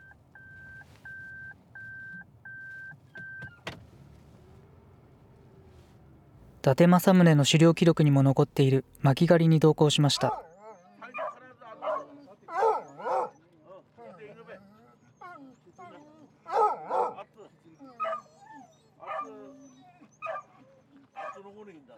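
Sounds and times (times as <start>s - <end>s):
speech: 6.6s - 10.5s
hunting dogs barking and yelping in the mountains while searching for deer: 10.1s - 10.4s, 11.2s - 13.4s, 16.5s - 17.2s, 18.0s - 18.3s, 19.0s - 19.4s, 20.2s - 20.5s.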